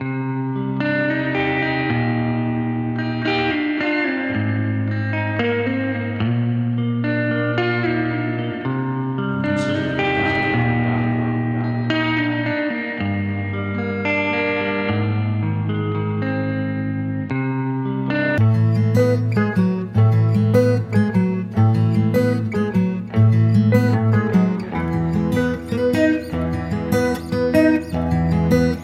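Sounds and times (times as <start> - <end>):
guitars: 0.0 - 28.8.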